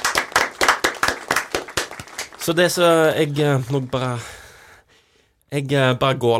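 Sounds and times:
audience clapping: 0.0s - 4.4s
speech: 2.4s - 4.4s, 5.5s - 6.3s.

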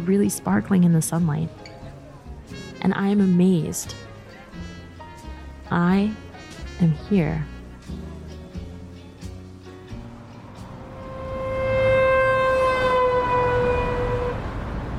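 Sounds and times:
speech: 0.0s - 1.7s, 2.8s - 4.1s, 5.7s - 6.2s, 6.8s - 8.0s
steady city street traffic noise: 0.0s - 14.9s
rumbling engine on a busy street: 9.9s - 14.9s
police siren wailing: 10.8s - 14.6s.

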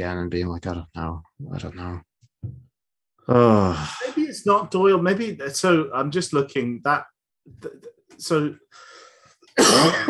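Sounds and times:
speech: 0.0s - 2.6s, 3.2s - 8.9s, 9.6s - 10.0s
murmured vocal sounds: 3.2s - 4.2s
person coughing: 9.6s - 10.0s.

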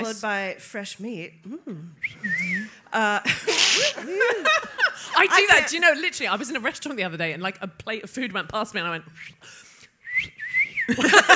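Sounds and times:
speech: 0.0s - 9.6s, 10.2s - 11.3s
person wolf whistling: 2.0s - 2.7s, 10.0s - 11.0s
laughter: 3.2s - 5.8s, 10.9s - 11.3s.

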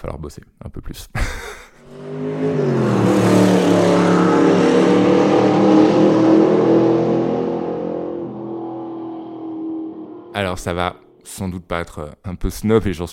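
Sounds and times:
speech: 0.0s - 3.0s, 10.6s - 13.1s
laughter: 1.2s - 1.8s
Porsche 911 Carrera sports car engine revving and accelerating: 1.8s - 10.5s.

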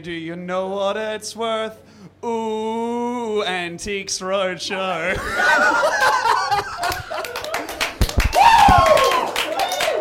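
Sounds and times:
speech: 0.0s - 7.0s
audience laughter: 5.1s - 7.7s
audience clapping: 6.0s - 9.9s
audience members whooping: 7.1s - 9.9s.

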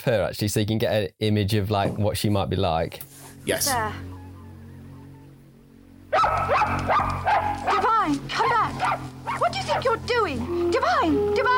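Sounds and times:
speech: 0.0s - 4.2s, 6.1s - 7.2s, 8.1s - 11.5s
quiet hum: 2.2s - 11.5s
small dog barking: 6.1s - 8.0s, 8.7s - 9.6s.

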